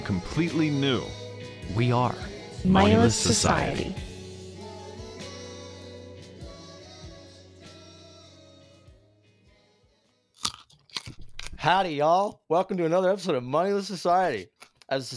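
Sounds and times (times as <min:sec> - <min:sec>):
speech: 0:00.0 - 0:04.1, 0:11.6 - 0:15.1
soft instrumental music: 0:00.0 - 0:09.3
crunching bites on a fresh carrot: 0:10.4 - 0:11.6.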